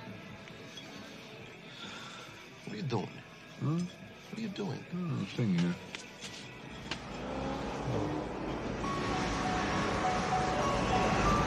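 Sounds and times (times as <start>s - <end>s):
speech: 2.8s - 5.9s
road noise: 5.4s - 11.4s
convertible car engine rumble pulling up to a party house: 6.5s - 11.4s.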